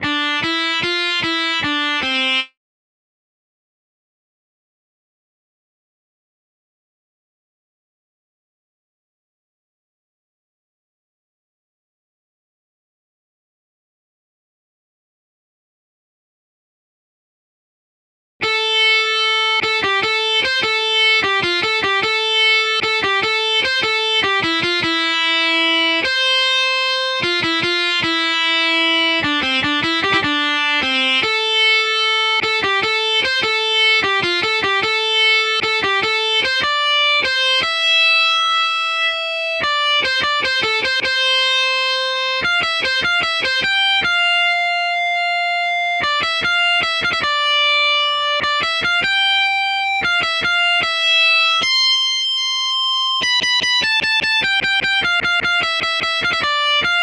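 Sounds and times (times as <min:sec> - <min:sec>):
guitar solo in C major: 0:00.0 - 0:02.5, 0:18.4 - 0:57.0.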